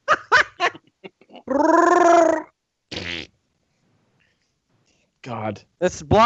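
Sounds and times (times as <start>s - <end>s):
laughter: 0.0s - 0.8s
voice imitating a queef: 1.4s - 3.3s
speech: 1.5s - 1.9s, 5.5s - 6.2s.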